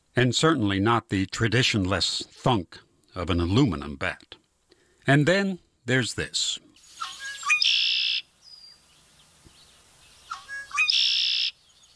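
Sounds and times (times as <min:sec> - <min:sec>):
speech: 0:00.2 - 0:04.4, 0:05.0 - 0:06.7
red-winged blackbird singing from its perch in the reeds: 0:06.8 - 0:11.9.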